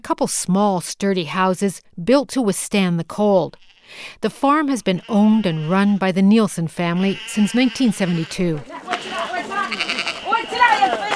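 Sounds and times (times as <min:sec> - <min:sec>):
speech: 0:00.1 - 0:09.9
sheep bleating during a round-up on a family farm in southern Greenland: 0:03.5 - 0:03.9, 0:04.8 - 0:06.2, 0:06.8 - 0:11.1.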